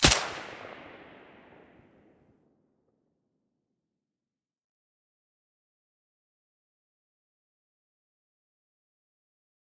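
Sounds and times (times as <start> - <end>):
silenced gunshot: 0.0 - 2.0.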